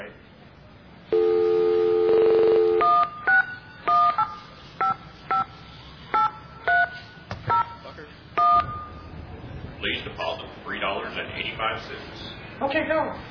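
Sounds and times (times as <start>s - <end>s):
payphone dial tone: 1.1s - 3.0s
touch-tone keypad beeps on a payphone: 1.2s - 7.8s, 8.4s - 9.2s
speech: 12.6s - 13.2s.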